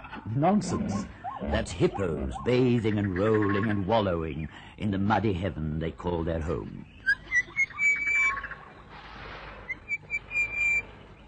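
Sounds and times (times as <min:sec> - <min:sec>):
speech: 0:00.3 - 0:07.0
orange-breasted bush shrike singing clear ringing whistled notes: 0:06.9 - 0:08.4, 0:09.7 - 0:11.2.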